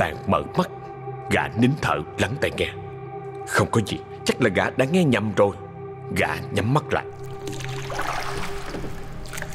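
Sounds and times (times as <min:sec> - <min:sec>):
speech: 0:00.0 - 0:02.8, 0:03.4 - 0:08.1
wooden paddle stroking through water as a boat is rowed: 0:07.4 - 0:09.5.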